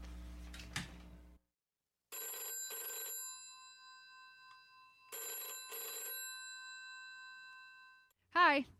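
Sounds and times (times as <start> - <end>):
telephone ringing with electronic double ring: 2.1 - 8.1
speech: 8.5 - 8.7.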